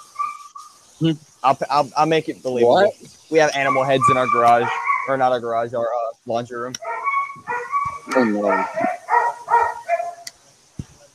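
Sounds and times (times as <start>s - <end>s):
speech: 1.0s - 6.9s, 8.1s - 8.9s
dog barking: 3.7s - 5.2s, 6.8s - 10.2s.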